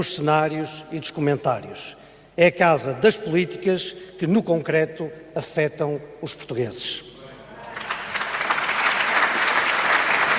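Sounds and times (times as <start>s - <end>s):
speech: 0.0s - 7.1s
large assembly applauding in a parliament chamber: 7.6s - 10.3s.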